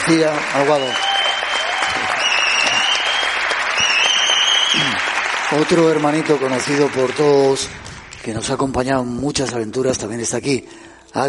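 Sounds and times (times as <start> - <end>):
audience applause: 0.0 - 8.3
speech: 0.1 - 1.1, 4.7 - 11.2
faint whistles and cheers from an audience: 0.6 - 5.1.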